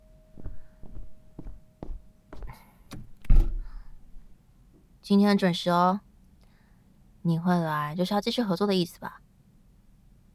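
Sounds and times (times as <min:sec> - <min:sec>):
soft footsteps: 0:00.3 - 0:04.4
door pulled open with a solid thunk and rattle: 0:00.4 - 0:04.4
door latch clicking: 0:02.4 - 0:04.3
speech: 0:05.1 - 0:06.1, 0:07.2 - 0:09.2.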